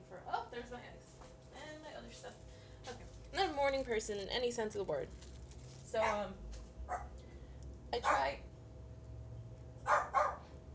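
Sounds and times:
low hum: 0:00.0 - 0:10.7
speech: 0:03.6 - 0:05.3, 0:05.9 - 0:07.1, 0:07.9 - 0:08.5
dog barking at work being done in the building: 0:06.9 - 0:07.2, 0:08.0 - 0:08.4, 0:09.8 - 0:10.5.

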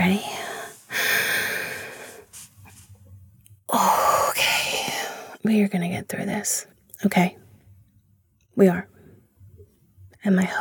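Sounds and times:
soft breathy sounds: 0:00.0 - 0:03.1, 0:03.7 - 0:05.4
person drawing a deep breath: 0:00.2 - 0:02.5
speech: 0:05.4 - 0:07.4, 0:08.6 - 0:08.9, 0:10.2 - 0:10.6.

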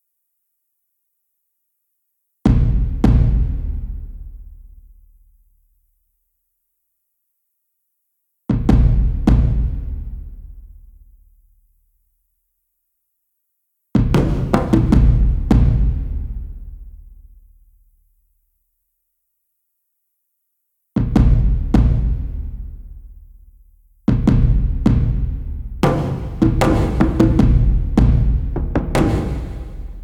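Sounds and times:
different drums: 0:02.5 - 0:05.1, 0:08.5 - 0:11.2, 0:13.9 - 0:17.5, 0:20.9 - 0:30.0.

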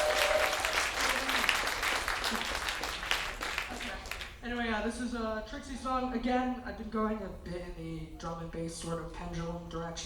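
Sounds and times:
audience applauding: 0:00.0 - 0:04.4
speech: 0:04.9 - 0:10.0.

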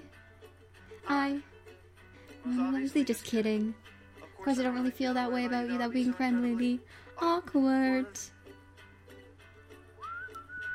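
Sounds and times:
speech: 0:01.0 - 0:01.5, 0:02.4 - 0:08.4
failed attempt at whistling: 0:10.0 - 0:10.7.

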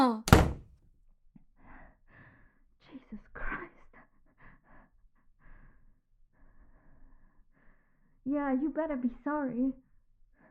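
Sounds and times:
door slamming shut with a heavy thud: 0:00.0 - 0:00.6
speech: 0:08.3 - 0:09.8.

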